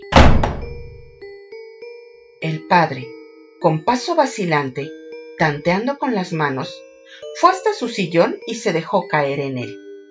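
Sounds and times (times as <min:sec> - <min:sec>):
door slamming shut with a heavy thud: 0:00.0 - 0:01.1
speech: 0:02.4 - 0:09.8.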